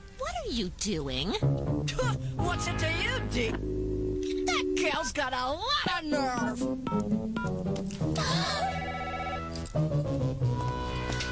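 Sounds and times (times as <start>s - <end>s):
speech: 0.4s - 8.7s
busy musical background: 1.3s - 11.3s
telephone ringing with a warbling tone: 3.7s - 5.2s.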